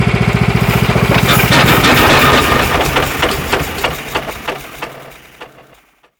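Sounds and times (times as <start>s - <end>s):
generator stopping: 0.0s - 6.1s.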